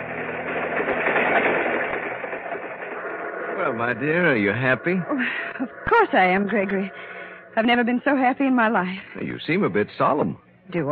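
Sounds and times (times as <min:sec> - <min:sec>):
steady mechanical rumble and rushing of a moving train: 0:00.0 - 0:08.6
speech: 0:03.7 - 0:10.9.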